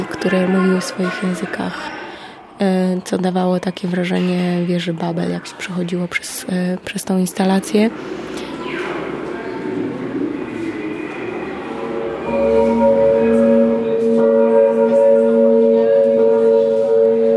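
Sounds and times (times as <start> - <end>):
speech: 0.0 - 2.0, 2.6 - 8.4
murmur of noise: 0.0 - 17.3
large cast bronze bell ringing in an art installation: 11.2 - 17.3.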